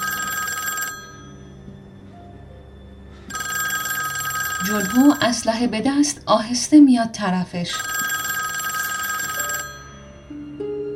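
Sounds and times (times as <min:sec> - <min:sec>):
lobby telephone ringing: 0:00.0 - 0:01.5, 0:03.3 - 0:05.5, 0:07.7 - 0:10.1
speech: 0:04.6 - 0:07.9.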